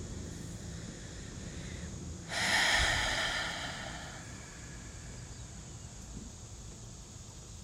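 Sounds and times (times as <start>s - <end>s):
deep breathing during a guided breathing exercise: 0.1s - 6.2s
open-mouth exhale: 0.2s - 6.0s.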